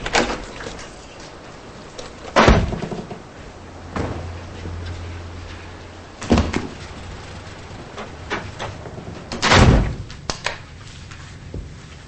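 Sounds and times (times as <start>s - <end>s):
motel room door opening and closing: 0.0s - 5.4s, 6.0s - 10.3s
low hum: 0.0s - 12.0s
motel room door knocks and clunks: 2.3s - 3.3s, 3.9s - 4.8s, 6.2s - 6.9s, 7.8s - 10.1s.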